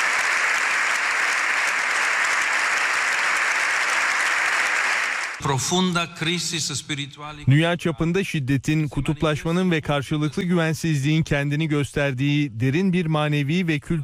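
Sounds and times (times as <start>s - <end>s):
standing audience applauding in the Spanish parliament: 0.0s - 5.4s
speech: 5.4s - 14.0s.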